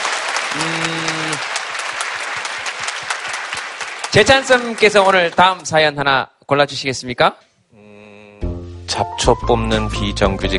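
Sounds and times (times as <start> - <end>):
audience applause: 0.0 - 5.6
speech: 4.2 - 7.5, 9.0 - 10.5.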